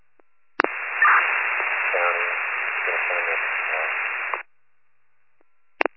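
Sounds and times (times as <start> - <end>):
radio transmission crackling with band-limited static: 0.6 - 4.5
faint garbled voice in radio hiss: 1.0 - 4.4.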